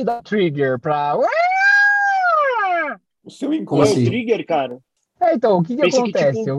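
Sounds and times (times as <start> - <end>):
speech: 0.0 - 1.4, 3.2 - 6.5
siren wailing: 1.2 - 3.0.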